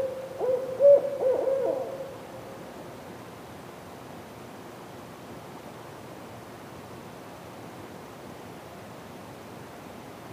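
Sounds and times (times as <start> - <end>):
owl hooting: 0.0 - 2.3.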